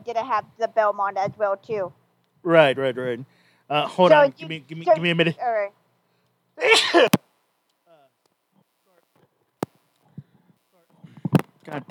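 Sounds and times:
speech: 0.1 - 5.8, 6.6 - 7.2, 11.7 - 11.9
loud sneeze: 6.6 - 7.2.

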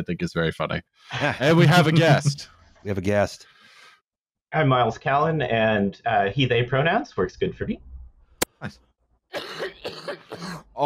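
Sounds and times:
speech: 0.0 - 3.5, 4.5 - 7.9, 8.6 - 10.8
laughter: 1.1 - 2.4
phlegmy cough played from a soundboard cough button: 9.3 - 10.7.

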